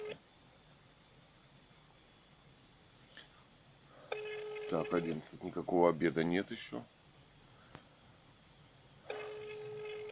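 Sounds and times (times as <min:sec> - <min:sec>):
unanswered telephone call electronic ring tone: 0:04.1 - 0:05.1, 0:09.1 - 0:10.1
speech: 0:04.7 - 0:07.0.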